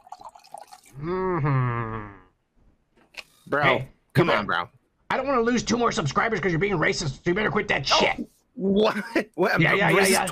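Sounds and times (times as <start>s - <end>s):
vodka being poured into a glass: 0.0s - 1.0s
speech: 1.0s - 1.6s, 3.5s - 10.2s.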